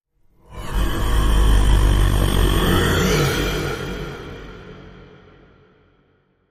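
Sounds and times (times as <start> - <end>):
minotaur roar flyby: 0.5 - 4.7.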